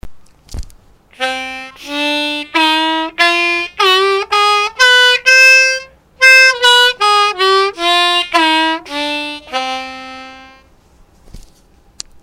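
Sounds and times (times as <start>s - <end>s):
harmonica: 1.1s - 10.7s.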